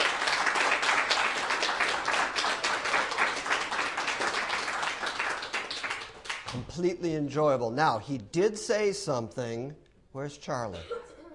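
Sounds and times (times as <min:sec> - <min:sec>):
audience applause: 0:00.0 - 0:06.7
speech: 0:06.5 - 0:11.0.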